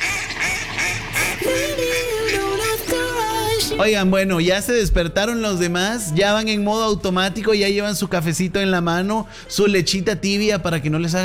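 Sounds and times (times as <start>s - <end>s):
duck quacking with nasal buzzy calls: 0.0s - 2.9s
speech: 3.8s - 11.2s.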